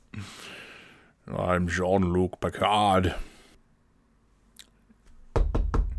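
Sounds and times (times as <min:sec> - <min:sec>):
speech: 0:01.3 - 0:03.3
knocking on a door: 0:05.3 - 0:05.9.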